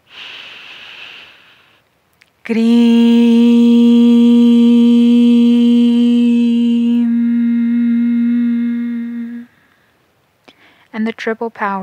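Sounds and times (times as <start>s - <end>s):
deep breathy inhale during spiritual breathing practice: 0.0s - 1.8s, 7.2s - 10.9s
speech: 2.4s - 3.0s, 11.0s - 11.8s
person intoning a sustained note in chanting practice: 2.5s - 9.6s.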